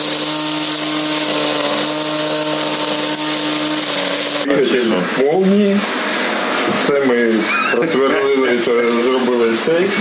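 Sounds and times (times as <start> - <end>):
lawnmower made from drone wreckage running: 0.0 - 4.5
speech: 4.5 - 6.0, 6.7 - 9.9.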